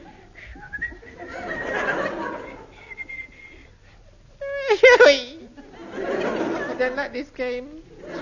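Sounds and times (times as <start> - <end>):
laughter: 0.0 - 3.7, 4.4 - 7.2, 7.9 - 8.2
steady noise: 0.0 - 8.2
person whistling a short cheerful melody: 0.5 - 1.2, 2.9 - 3.5
speech: 6.8 - 8.2.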